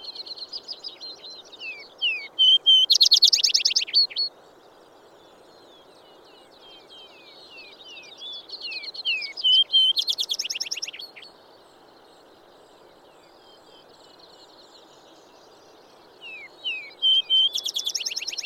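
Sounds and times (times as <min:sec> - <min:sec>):
faint steady hiss: 0:00.0 - 0:18.4
vesper sparrow singing: 0:01.6 - 0:04.3, 0:08.4 - 0:11.2, 0:16.3 - 0:18.4.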